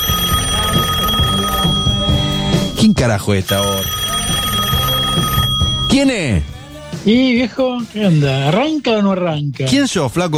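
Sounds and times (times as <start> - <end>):
telephone ringing in a studio: 0.0 - 8.0
speech: 2.9 - 4.0, 5.9 - 10.3.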